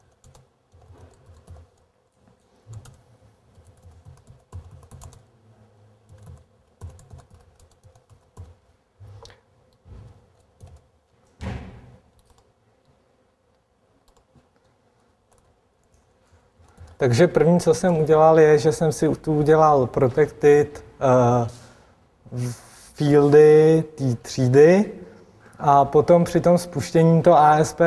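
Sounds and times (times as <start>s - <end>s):
fast typing on a computer keyboard while writing ASP.NET code: 0.0s - 1.9s, 2.7s - 5.3s, 6.1s - 8.6s, 10.4s - 10.9s, 12.1s - 12.5s, 14.0s - 14.3s, 15.3s - 16.0s, 16.6s - 17.0s
speech: 17.0s - 21.6s, 22.3s - 25.0s, 25.6s - 27.8s.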